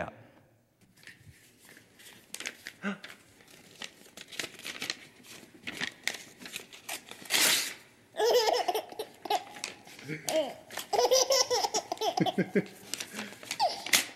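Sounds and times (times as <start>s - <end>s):
paper being ripped up by a man playing with his son: 1.0s - 7.9s, 12.7s - 14.1s
speech: 2.8s - 3.0s, 12.3s - 12.8s
small child laughing: 8.2s - 12.8s, 13.5s - 14.1s.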